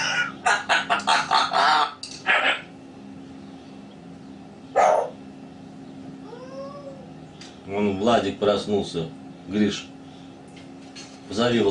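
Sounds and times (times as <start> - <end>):
chicken clucking: 0.0 - 2.0
speech: 7.8 - 9.9, 11.4 - 11.6.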